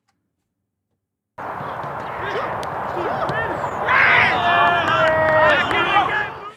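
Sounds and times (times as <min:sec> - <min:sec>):
young men shouting across an open field at football training: 0:01.5 - 0:06.5
young men loudly cheering and whooping as a goal is scored: 0:01.6 - 0:06.5.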